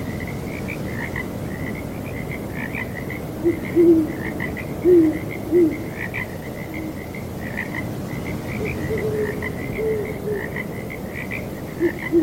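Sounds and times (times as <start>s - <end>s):
constant high-pitched frog chorus: 0.0s - 12.2s
owl giving low mellow hoots on a breezy night: 3.4s - 4.2s, 4.8s - 5.8s, 8.6s - 10.5s, 11.8s - 12.2s.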